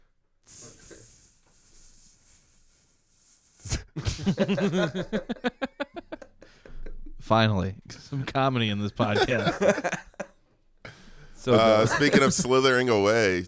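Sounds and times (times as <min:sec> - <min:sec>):
person imitating a snake with a long hiss: 0:00.4 - 0:04.4
laughter: 0:04.0 - 0:07.2, 0:09.0 - 0:10.4, 0:11.4 - 0:12.8
speech: 0:04.2 - 0:05.6, 0:07.3 - 0:10.0, 0:11.4 - 0:13.4.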